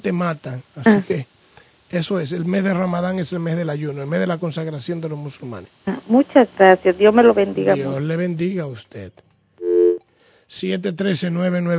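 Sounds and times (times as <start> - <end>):
speech: 0.0 - 9.3, 10.5 - 11.7
telephone busy tone after a dropped call: 9.6 - 10.0.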